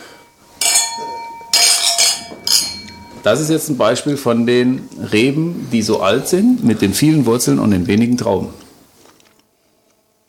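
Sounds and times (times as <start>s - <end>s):
wine glasses clinking together in a toast: 0.0s - 3.8s
speech: 3.2s - 8.7s.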